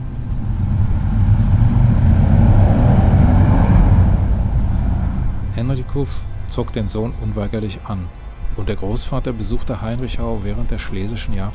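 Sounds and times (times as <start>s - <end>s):
loud motorcycle roaring past: 0.0s - 6.8s
speech: 6.0s - 11.5s.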